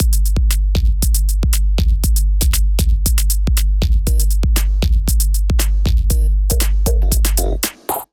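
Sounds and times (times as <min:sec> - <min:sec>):
drum kit groove at 118 bpm: 0:00.0 - 0:08.1.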